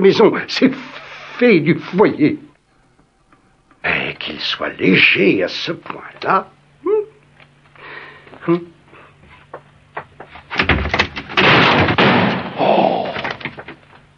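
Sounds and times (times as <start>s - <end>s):
speech: 0.0s - 2.5s, 3.8s - 6.6s, 8.4s - 8.8s
door creaking as it is pulled open: 0.8s - 2.5s, 13.0s - 13.8s
loud crash of wood from a door breaking loose: 10.4s - 14.0s
clattering debris: 10.6s - 13.9s.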